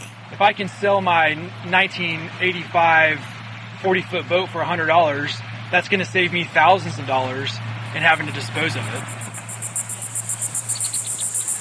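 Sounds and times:
speech: 0.4 - 9.3
cicadas singing at a coastal marsh in Virginia: 7.7 - 11.5.

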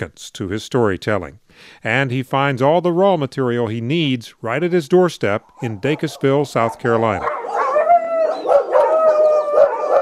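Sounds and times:
speech: 0.0 - 7.5
pack of dogs howling at a rural ranch-style house in South Carolina: 5.5 - 10.0.

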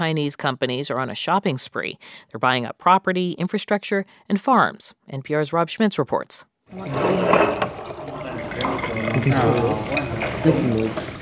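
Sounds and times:
speech: 0.0 - 7.8, 8.9 - 11.1
wine being poured from bottles in a winery tasting room in Sydney Australia: 6.7 - 11.2.

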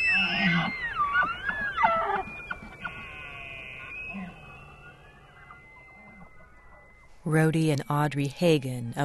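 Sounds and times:
elk bugling: 0.0 - 7.2
speech: 7.3 - 9.0.

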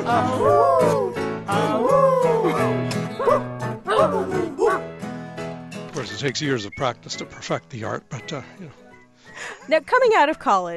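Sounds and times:
person imitating a dog with barking howls: 0.0 - 4.9
speech: 0.1 - 1.6, 6.2 - 10.7.

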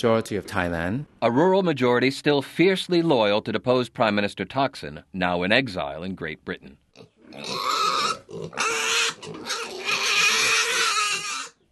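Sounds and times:
speech: 0.0 - 9.7
pigs grunting on a pig farm in rural Thailand: 7.0 - 11.6.

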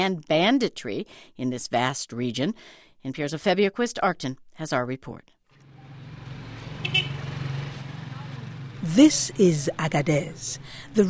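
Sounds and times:
speech: 0.0 - 5.4, 8.8 - 11.0
motorbike engine buzzing on a town street: 5.6 - 10.9
faint traffic: 5.6 - 11.0.

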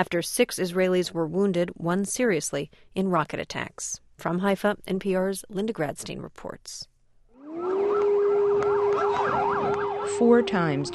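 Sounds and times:
speech: 0.0 - 6.9, 10.1 - 10.9
air raid siren warning of incoming rockets: 7.4 - 10.9.

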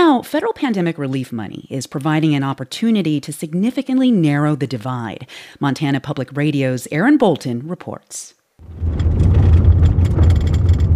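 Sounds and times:
speech: 0.2 - 9.4
car engine driving up a rugged gravel road along a creek in western Montana: 8.6 - 10.9.

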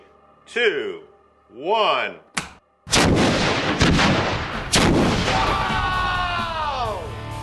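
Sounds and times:
speech: 0.5 - 2.3
sewer explosion set off by a spark: 2.9 - 5.7
excited voices calling out: 5.3 - 7.1.

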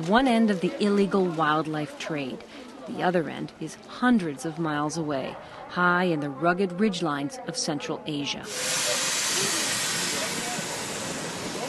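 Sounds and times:
speech: 0.0 - 9.5
faint indistinct murmurs: 0.0 - 11.6
passenger train running on the Trans-Mongolian Railway across the Gobi Desert: 8.4 - 11.6.

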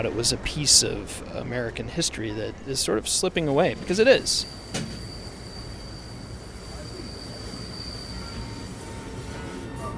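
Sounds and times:
speech: 0.0 - 5.0
passenger train rolling along the rails across the southwestern United States: 0.0 - 9.9
thin sustained metallic train wheel squeal: 4.4 - 9.9.

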